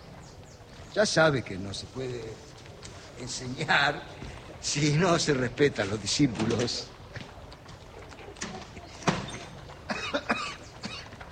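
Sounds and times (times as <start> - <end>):
speech: 1.0 - 2.5, 3.2 - 6.9
person coughing: 9.9 - 11.1.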